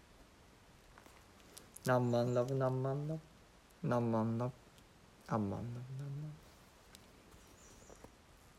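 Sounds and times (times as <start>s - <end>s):
speech: 1.8s - 4.6s, 5.3s - 6.1s
bird calling: 7.3s - 8.1s.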